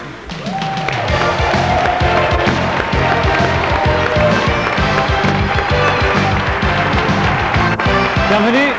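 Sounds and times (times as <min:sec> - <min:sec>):
regular guest fanfare: 0:00.9 - 0:08.7.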